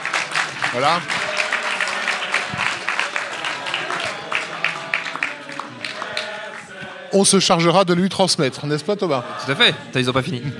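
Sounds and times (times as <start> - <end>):
people cheering: 0.0 - 7.1
room full of people applauding for a birthday: 0.0 - 7.1
speech: 0.7 - 1.2, 7.1 - 10.5
laughter: 10.0 - 10.5.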